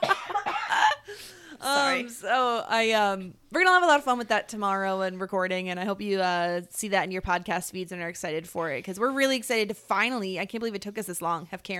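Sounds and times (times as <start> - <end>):
person coughing: 0.0 - 1.2
speech: 1.6 - 11.7.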